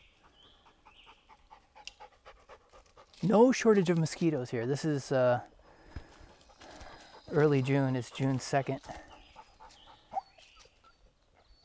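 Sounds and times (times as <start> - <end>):
dog panting after running up a trail on a warm June day: 0.1 - 3.2, 6.0 - 11.6
speech: 3.2 - 5.5, 7.3 - 9.1.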